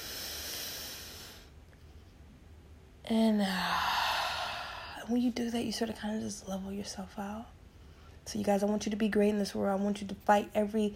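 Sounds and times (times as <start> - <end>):
slow deep breathing in and out through the mouth: 0.0 - 1.6, 3.3 - 5.1
speech: 3.1 - 3.9, 5.1 - 7.6, 8.2 - 10.9.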